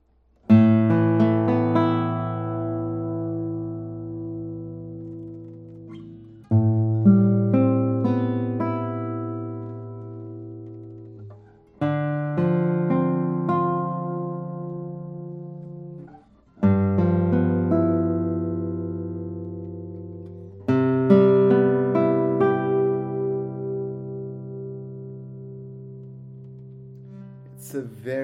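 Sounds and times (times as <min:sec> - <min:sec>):
Masaki Sakurai Maestro RF classical guitar with cedar top and Madagascar rosewood played solo: 0:00.3 - 0:28.2.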